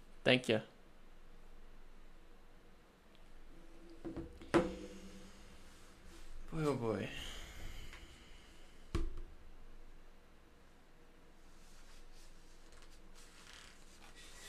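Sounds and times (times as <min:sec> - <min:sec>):
steady low hiss: 0:00.0 - 0:14.4
speech: 0:00.2 - 0:00.7, 0:06.6 - 0:07.3
sharp handling knock: 0:04.0 - 0:04.9
high-quality paper stock rustling and rubbing: 0:12.4 - 0:14.4.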